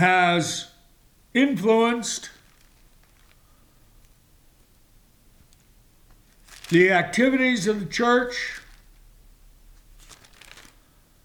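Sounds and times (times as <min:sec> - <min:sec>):
speech: 0:00.0 - 0:00.7, 0:01.3 - 0:02.4, 0:06.7 - 0:08.6
pages of a book turning: 0:02.3 - 0:04.8, 0:05.4 - 0:09.1, 0:09.7 - 0:11.0.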